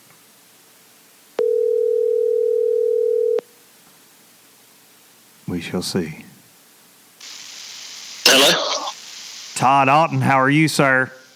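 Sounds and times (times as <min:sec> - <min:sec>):
telephone dial tone while placing a call: 0:01.4 - 0:03.4
speech: 0:05.6 - 0:06.3, 0:09.6 - 0:11.2.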